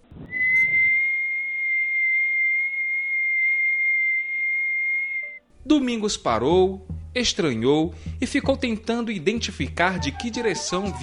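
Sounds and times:
long thin distant whistle: 0:00.3 - 0:05.4
speech: 0:05.7 - 0:11.0.

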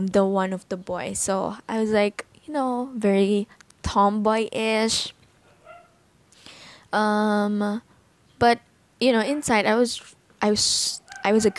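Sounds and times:
speech: 0:00.0 - 0:05.2, 0:06.9 - 0:11.5
faint dog yipping: 0:05.4 - 0:06.0
dog barking: 0:05.5 - 0:06.0.

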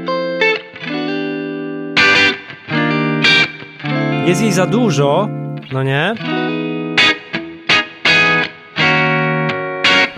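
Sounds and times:
electric guitar on a neck pickup through a lightly driven amp: 0:00.0 - 0:10.1
speech: 0:04.2 - 0:06.6.

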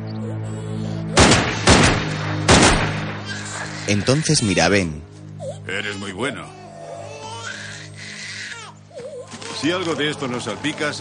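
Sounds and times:
pistol gunshots in a dramatic film scene: 0:01.2 - 0:03.8
speech: 0:03.9 - 0:06.6, 0:09.6 - 0:11.0.

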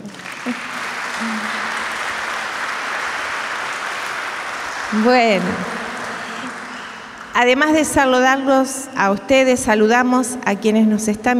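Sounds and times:
audience applauding: 0:00.0 - 0:07.8
speech: 0:00.5 - 0:01.4, 0:04.9 - 0:05.8, 0:07.4 - 0:11.3.

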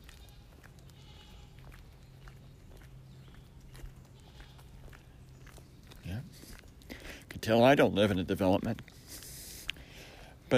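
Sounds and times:
goats bleating faintly: 0:00.0 - 0:01.8, 0:04.0 - 0:04.9
hoof-like clicks: 0:00.0 - 0:09.8
speech: 0:07.4 - 0:09.0.

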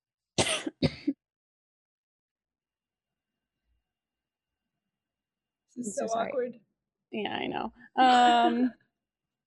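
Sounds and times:
person coughing and clearing throat: 0:00.4 - 0:01.2
speech: 0:05.8 - 0:08.8.

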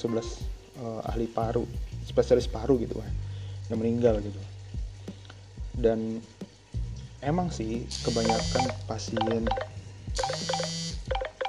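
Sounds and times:
speech: 0:00.0 - 0:04.6, 0:05.8 - 0:06.4, 0:07.2 - 0:10.7
phone's electronic ringtone for an incoming call: 0:08.1 - 0:11.4.

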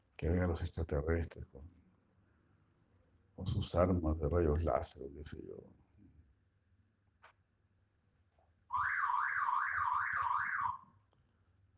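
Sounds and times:
speech: 0:00.2 - 0:01.8, 0:03.4 - 0:05.8
car alarm: 0:08.7 - 0:10.9.

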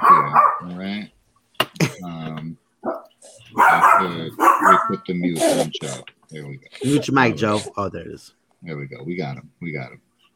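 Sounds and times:
dog barking: 0:00.0 - 0:00.8, 0:02.8 - 0:05.0
speech: 0:05.0 - 0:10.1.

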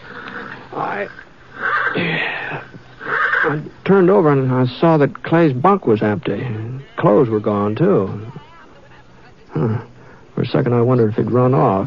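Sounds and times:
agitated horse neighing in a corral: 0:00.0 - 0:03.7
steady low hum: 0:00.0 - 0:11.8
speech: 0:00.8 - 0:01.3, 0:03.5 - 0:08.4, 0:09.5 - 0:11.8.

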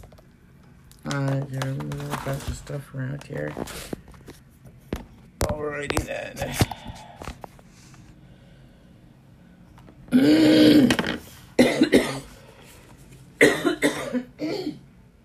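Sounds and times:
speech: 0:01.1 - 0:04.0, 0:05.8 - 0:07.1
person coughing: 0:10.1 - 0:12.4, 0:13.4 - 0:14.9.

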